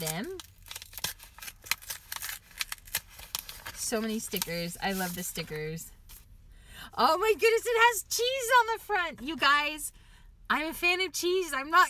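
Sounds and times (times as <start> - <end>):
speech: 0.0 - 0.5, 3.9 - 6.0, 6.9 - 11.8
birthday card paper rustling as it is opened: 0.0 - 6.2.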